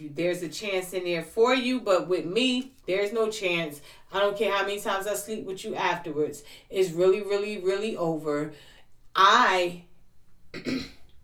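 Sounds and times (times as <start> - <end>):
speech: 0.0 - 9.9, 10.5 - 11.0
person clearing throat: 10.6 - 11.1.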